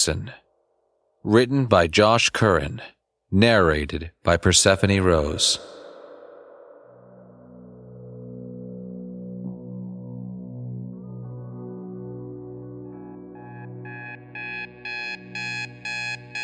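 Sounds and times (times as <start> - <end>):
speech: 0.0 - 0.4, 1.2 - 5.8
alarm clock beeping in rapid electronic pulses: 13.4 - 16.4.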